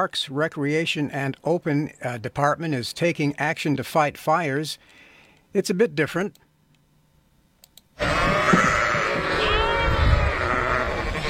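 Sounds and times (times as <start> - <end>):
speech: 0.0 - 6.4
faint clicks: 4.9 - 5.5, 7.6 - 7.9
flock of sheep bleating: 8.0 - 11.2.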